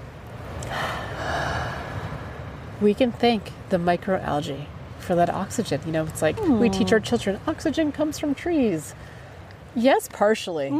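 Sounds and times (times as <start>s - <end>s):
people taking a deep breath together: 0.6s - 2.4s
speech: 2.8s - 9.2s, 9.8s - 10.7s.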